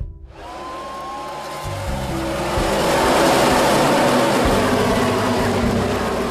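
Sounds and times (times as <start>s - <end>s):
race car engines roaring around the track: 0.3s - 6.2s.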